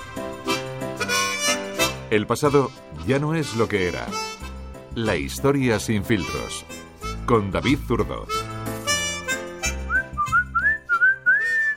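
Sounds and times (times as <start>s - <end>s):
low instrumental music: 0.0s - 11.7s
speech: 2.1s - 4.4s, 5.0s - 8.4s
person whistling a short wavering tune: 9.6s - 11.7s.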